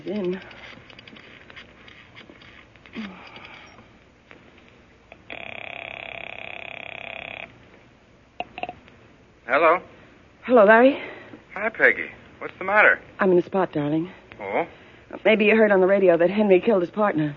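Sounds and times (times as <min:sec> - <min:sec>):
rustling: 0:00.0 - 0:05.5
speech: 0:00.1 - 0:00.6, 0:09.5 - 0:17.3
telephone buzzing tone: 0:05.1 - 0:07.6, 0:08.4 - 0:08.8.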